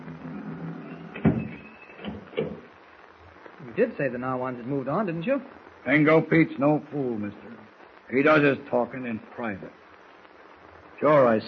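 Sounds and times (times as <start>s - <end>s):
low room hum: 0.0s - 11.4s
door shutting with a thump: 1.1s - 2.7s
speech: 3.8s - 7.4s, 8.1s - 9.8s, 11.0s - 11.4s.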